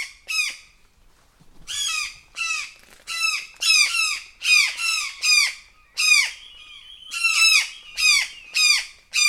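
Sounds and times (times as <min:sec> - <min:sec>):
Brown jay alarm calls, loud grating downward screams: 0:03.3 - 0:09.2.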